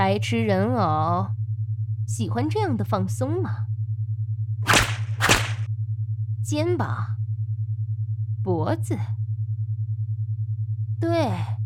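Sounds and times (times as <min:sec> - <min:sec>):
constant low electrical hum: 0:00.0 - 0:11.6
speech: 0:00.1 - 0:01.4, 0:02.1 - 0:03.7, 0:06.4 - 0:07.2, 0:08.4 - 0:09.2, 0:11.0 - 0:11.6
sharp whip lashes cracking: 0:04.6 - 0:05.7.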